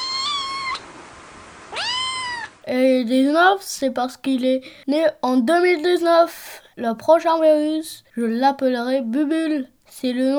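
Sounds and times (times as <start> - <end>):
pet cat meowing: 0.0 - 0.9, 1.7 - 2.6
speech: 2.7 - 10.3.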